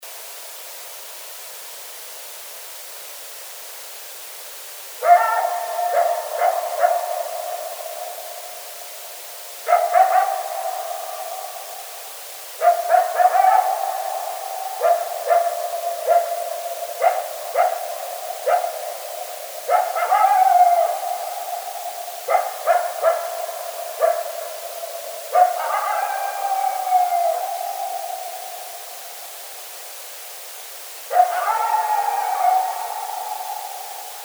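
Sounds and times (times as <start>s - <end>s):
bigfoot howl in Colorado: 5.0s - 8.6s, 9.7s - 29.0s, 31.1s - 34.2s.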